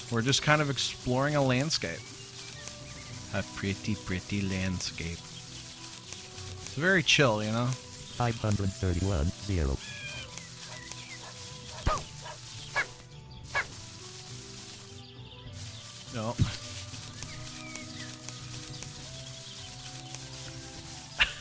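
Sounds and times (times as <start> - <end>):
steady droning musical background: 0.0 - 21.3
speech: 0.1 - 2.2, 3.3 - 5.3, 6.8 - 10.0
dog barking in short sharp yelps: 11.2 - 12.9, 13.5 - 13.7.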